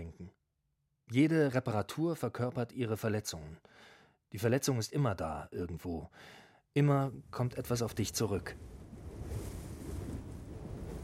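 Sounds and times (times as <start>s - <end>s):
speech: 1.1s - 8.8s
wind blowing across the Kansas prairie: 7.2s - 11.0s.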